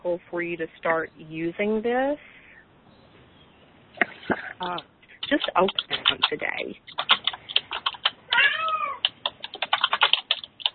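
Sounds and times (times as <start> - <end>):
speech: 0.0 - 2.4, 4.3 - 7.2
rapid clicking of a computer keyboard being typed on: 4.6 - 10.7
domestic male cat meowing: 7.8 - 9.1.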